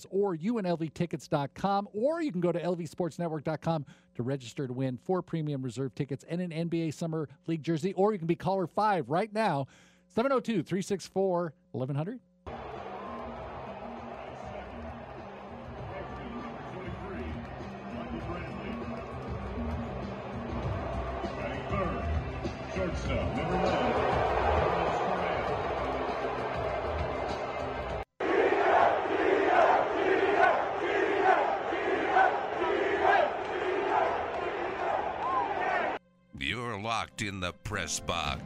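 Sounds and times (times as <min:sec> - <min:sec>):
speech: 0:00.0 - 0:12.8, 0:37.1 - 0:38.4
baseball stadium crowd roaring: 0:12.5 - 0:36.0.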